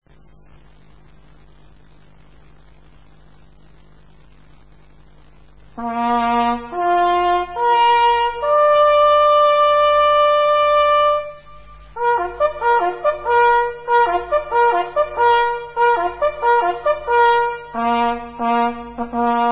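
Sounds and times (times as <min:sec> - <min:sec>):
blown horn signals: 0:05.8 - 0:19.5.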